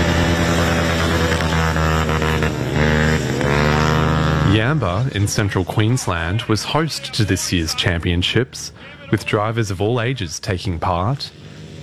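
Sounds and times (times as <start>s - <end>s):
modified ride-on lawnmowers racing around a dirt track: 0.0s - 11.8s
laughter: 4.4s - 11.2s
speech: 4.6s - 11.8s.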